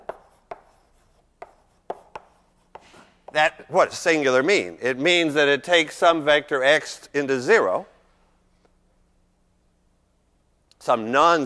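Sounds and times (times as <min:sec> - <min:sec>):
taps and scrapes of writing on a board during a lecture: 0:00.0 - 0:03.4
speech: 0:03.3 - 0:07.9, 0:10.9 - 0:11.4.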